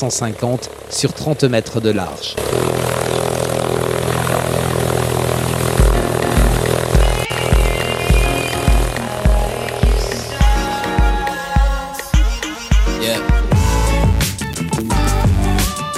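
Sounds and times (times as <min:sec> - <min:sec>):
speech: 0:00.0 - 0:03.3
light airplane engine droning at the aerodrome of Ussel in Haute-Corrèze France: 0:00.0 - 0:11.6
regular low thumps: 0:02.4 - 0:11.8, 0:13.4 - 0:15.8.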